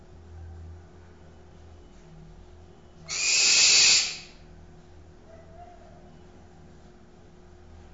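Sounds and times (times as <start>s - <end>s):
barn owl giving a breathy rasping scream: 3.1s - 4.4s.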